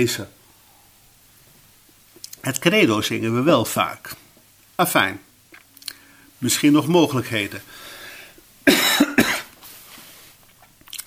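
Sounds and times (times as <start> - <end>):
speech: 0.0 - 0.4, 2.4 - 4.2, 4.8 - 5.3, 6.4 - 7.9
harsh coughing: 8.6 - 9.6
faint rustle: 9.5 - 10.9.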